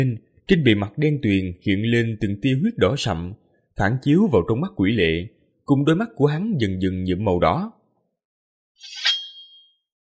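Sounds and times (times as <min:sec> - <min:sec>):
speech: 0:00.0 - 0:07.8, 0:08.8 - 0:09.1
sword ringing with a bright metallic clang: 0:08.8 - 0:09.9.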